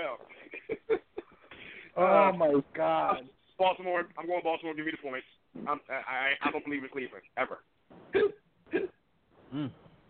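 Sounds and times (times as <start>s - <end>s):
speech: 2.0s - 8.4s, 9.5s - 9.8s
hiccups: 8.1s - 9.8s.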